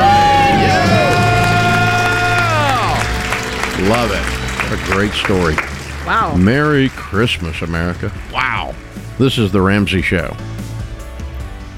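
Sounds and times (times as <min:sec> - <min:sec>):
small group screaming and cheering in celebration after paying off debt: 0:00.0 - 0:09.0
speech: 0:04.7 - 0:10.5.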